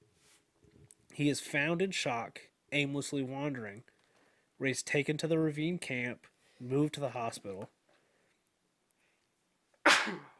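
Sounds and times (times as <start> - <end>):
speech: 1.2 - 3.9, 4.6 - 7.8, 10.0 - 10.3
exhale after a sneeze: 4.1 - 4.5
person sneezing caused by pollen: 9.8 - 10.3.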